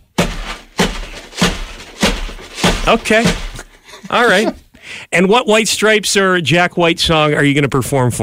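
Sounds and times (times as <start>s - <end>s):
Trapper Keeper binder full of tacks struck like a drum: 0.0s - 3.7s
tacks rattling inside a binder: 0.0s - 3.8s
speech: 2.9s - 3.4s, 4.1s - 8.2s.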